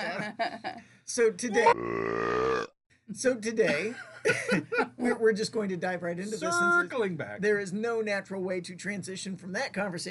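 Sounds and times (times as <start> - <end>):
speech: 0.0 - 10.1
long voiced burp from a person after chugging a drink: 1.6 - 2.8.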